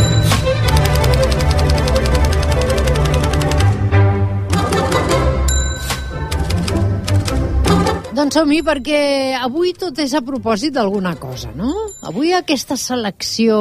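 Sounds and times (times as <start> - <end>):
steady tonal background: 0.0 - 13.5
green Olivetti typewriter keystrokes clacking: 0.6 - 3.8
speech: 8.2 - 13.5.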